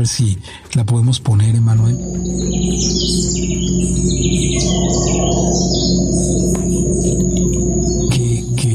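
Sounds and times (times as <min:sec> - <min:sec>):
speech: 0:00.0 - 0:06.8
birds chirping: 0:01.1 - 0:08.7
insects buzzing: 0:01.6 - 0:08.7
howler monkeys roaring in a jungle: 0:02.0 - 0:08.5.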